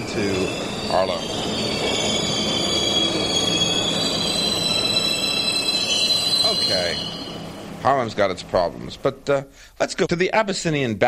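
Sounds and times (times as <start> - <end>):
high metallic wheel squeal of subway train: 0.0 - 7.5
subway train rumbling along the rails toward Harlem: 0.0 - 9.3
speech: 0.2 - 1.6, 7.8 - 11.0.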